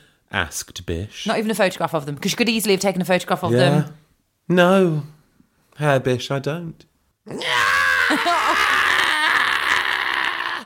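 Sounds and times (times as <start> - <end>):
speech: 0.3 - 5.2, 5.8 - 8.7
man screaming angrily: 7.3 - 10.6.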